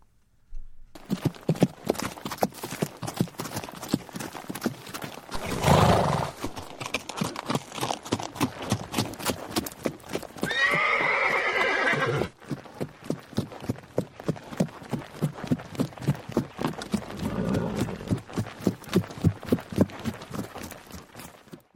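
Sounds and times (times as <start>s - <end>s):
Arabian horse hooves clip-clopping: 0.9s - 21.7s
Arabian horse neighing: 5.3s - 6.7s, 10.4s - 12.4s, 17.2s - 18.1s
Arabian horse snorting: 5.3s - 7.0s, 17.1s - 18.2s.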